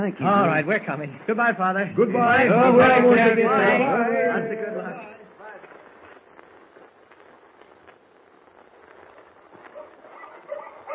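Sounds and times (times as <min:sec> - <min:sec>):
speech: 0:00.0 - 0:05.2
pack of huskies barking and yelping: 0:09.7 - 0:10.9.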